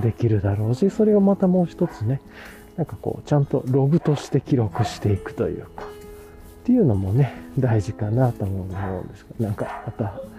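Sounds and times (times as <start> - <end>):
speech: 0.0 - 6.0, 6.6 - 10.3
dog barking in the distance: 1.8 - 2.2, 3.9 - 5.2, 8.6 - 10.3.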